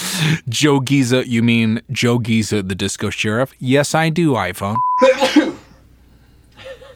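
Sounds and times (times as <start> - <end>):
speech: 0.2 - 5.4
sneeze: 5.0 - 5.6.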